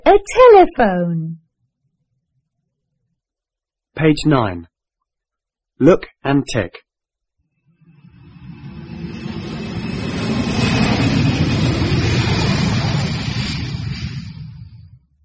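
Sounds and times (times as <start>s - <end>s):
speech: 0.0s - 1.4s, 4.0s - 4.7s, 5.8s - 6.8s
aeroplane passing overhead with deep engine roar: 7.8s - 15.1s.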